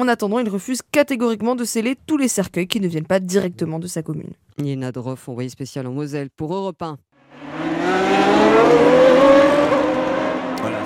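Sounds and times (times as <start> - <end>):
speech: 0.0 - 8.9
Formula 1 race car engine screaming past: 7.2 - 10.8.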